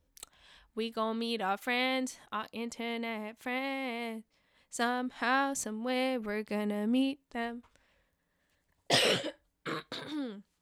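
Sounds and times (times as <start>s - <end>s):
speech: 0.7s - 7.7s
person coughing harshly: 8.9s - 10.5s.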